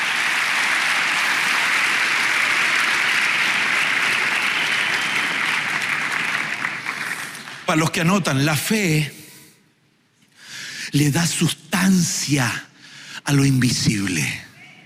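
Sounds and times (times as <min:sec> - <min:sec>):
large crowd applauding: 0:00.0 - 0:08.0
speech: 0:07.7 - 0:09.2, 0:10.9 - 0:14.4.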